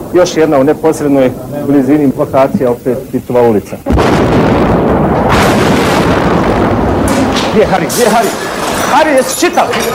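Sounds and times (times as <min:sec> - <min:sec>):
speech: 0:00.1 - 0:05.8, 0:07.6 - 0:09.9
continuous heavy roar and rumble: 0:03.9 - 0:07.9
artillery shell exploding on a street during a siege: 0:03.9 - 0:08.9.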